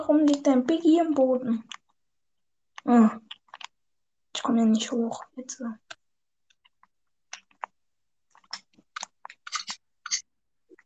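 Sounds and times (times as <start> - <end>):
speech: 0.0 - 1.8, 2.8 - 3.3, 4.4 - 5.9
person chewing crunchy food while eating: 2.7 - 3.8, 5.8 - 10.8.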